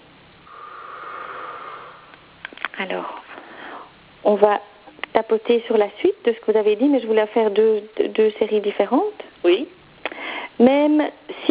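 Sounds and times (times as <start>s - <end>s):
slow breath drawn in during a calming tapping exercise: 0.4s - 2.3s
speech: 2.8s - 3.3s, 4.2s - 9.8s, 10.6s - 11.5s.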